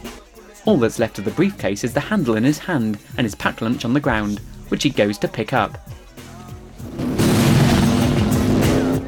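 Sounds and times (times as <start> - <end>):
speech: 0.7 - 6.0
motorbike thundering past and roaring away through dust: 6.9 - 9.0.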